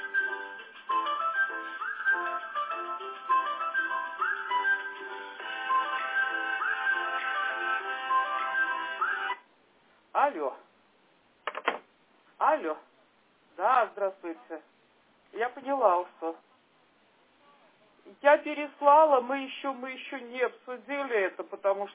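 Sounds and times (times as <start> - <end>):
electronic telephone ringtone going unanswered: 0.2 - 9.4
speech: 12.6 - 12.9, 13.8 - 16.5, 18.1 - 21.9.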